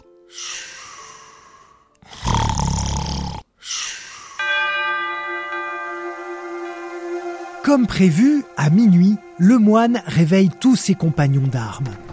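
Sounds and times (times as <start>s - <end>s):
person snoring while falling asleep: 0.0s - 4.4s
person breathing while falling asleep: 0.2s - 2.5s, 3.6s - 4.5s
ringing chime-like tone: 4.4s - 8.2s
speech: 7.7s - 12.1s.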